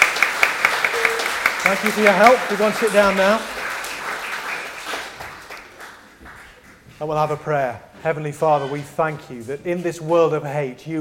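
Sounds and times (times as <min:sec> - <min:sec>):
audience applause for helpers at a church gathering: 0:00.0 - 0:06.6
speech: 0:01.7 - 0:03.6, 0:07.0 - 0:10.9.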